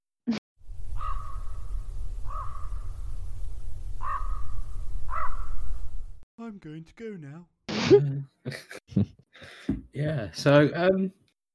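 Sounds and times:
raven cawing: 0.9 - 1.6, 2.2 - 2.8, 4.0 - 5.8
speech: 6.6 - 11.2.

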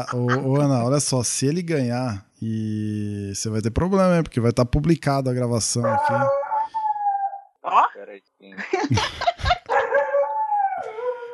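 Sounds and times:
laughter: 0.0 - 0.9, 8.6 - 10.0
speech: 0.0 - 6.4, 8.0 - 9.2
dog howling: 5.8 - 7.5, 9.7 - 11.3
dog giving quick rough barks: 9.7 - 10.3.

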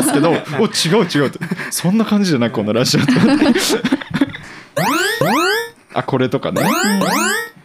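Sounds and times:
speech: 0.2 - 4.1, 6.0 - 7.4
laughter: 3.0 - 4.4
whooping electronic emergency alert alarm: 4.8 - 5.7, 6.6 - 7.6.

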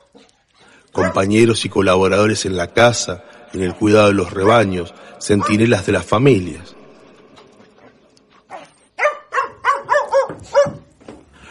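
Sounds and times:
speech: 0.1 - 0.4, 1.0 - 6.8
dog barking: 1.0 - 1.3, 5.3 - 5.7, 8.5 - 10.9.

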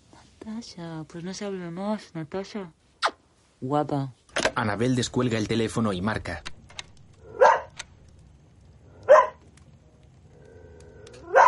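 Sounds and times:
faint low hum: 0.0 - 11.4
speech: 0.4 - 2.8, 3.6 - 6.5
dog barking: 7.3 - 7.8, 9.0 - 9.4, 11.2 - 11.4.

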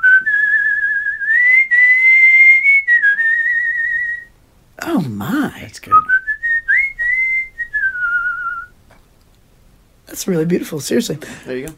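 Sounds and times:
person whistling a slow melody with vibrato: 0.0 - 4.3, 5.9 - 8.7
speech: 5.0 - 6.1, 10.2 - 11.7.

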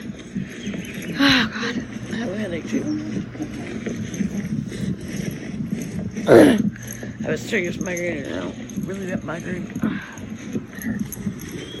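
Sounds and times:
dogs' footsteps and scuffling outdoors: 0.0 - 11.7
speech: 2.5 - 4.2, 6.3 - 6.7, 7.3 - 10.1.

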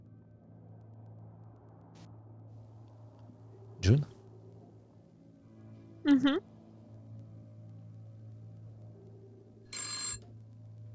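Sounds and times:
speech: 3.8 - 4.1, 6.2 - 6.5
telephone electronic ring: 9.7 - 10.3.

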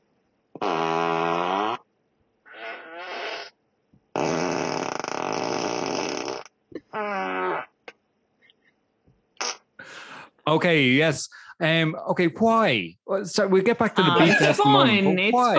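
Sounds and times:
car's novelty fart sound effect: 0.6 - 1.9, 2.5 - 3.6, 4.2 - 7.9, 9.4 - 9.8
speech: 10.5 - 15.5
laughter: 13.3 - 15.5.

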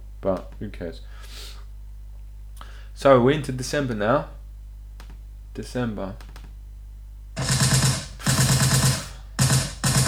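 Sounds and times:
speech: 0.2 - 1.6, 3.0 - 4.4, 5.6 - 6.3
rapid automatic gunfire: 7.4 - 10.0.

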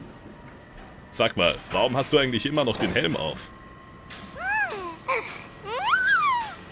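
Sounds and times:
speech: 1.1 - 3.6
baby babbling with coos and squeals: 4.4 - 6.6.

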